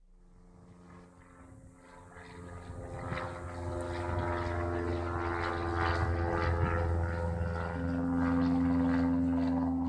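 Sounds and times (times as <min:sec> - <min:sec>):
propeller airplane droning overhead, descending to land: 0:00.0 - 0:09.8.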